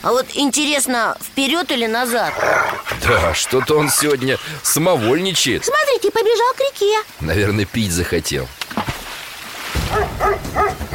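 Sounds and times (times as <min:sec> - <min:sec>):
speech: 0:00.0 - 0:08.9
continuous low noise: 0:00.0 - 0:09.7
dog barking at a boat by a river: 0:02.3 - 0:05.2, 0:09.9 - 0:10.9.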